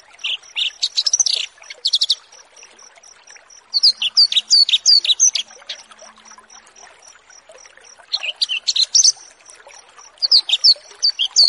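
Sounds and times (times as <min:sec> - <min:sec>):
Horsfield's bush lark song with buzzy chirps and upslurred whistles: 0:00.0 - 0:11.4.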